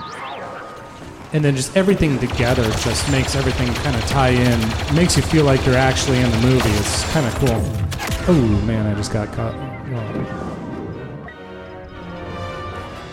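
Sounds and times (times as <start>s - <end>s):
speech: 1.3s - 10.5s
video game laser blasts: 2.0s - 8.2s.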